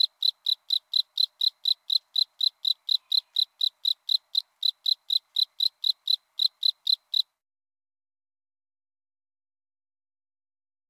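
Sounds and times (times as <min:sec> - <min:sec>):
Northern spring field cricket Gryllus veletis chirping: 0:00.0 - 0:07.4.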